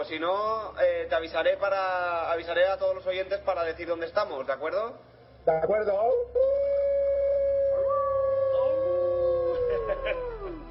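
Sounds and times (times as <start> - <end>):
speech: 0.0 - 6.6, 10.0 - 10.3
two people imitating a wolf howl: 6.4 - 10.6
laughter: 9.2 - 10.6.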